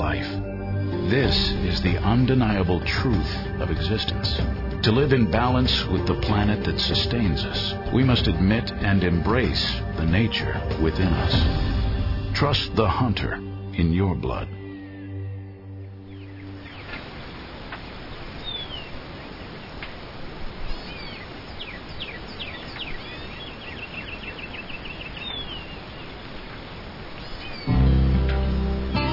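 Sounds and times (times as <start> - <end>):
tonal music: 0.0 - 16.7, 27.7 - 29.1
steady hiss of outdoor ambience: 0.0 - 29.1
wild birds chirping and calling at a ranch: 0.0 - 29.1
speech: 1.1 - 11.7, 12.4 - 14.6.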